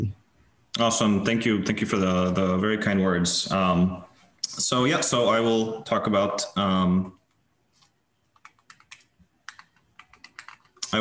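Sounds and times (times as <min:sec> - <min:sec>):
speech: 0:00.8 - 0:07.2
computer keyboard keys pressed to advance presentation slides: 0:08.3 - 0:10.8.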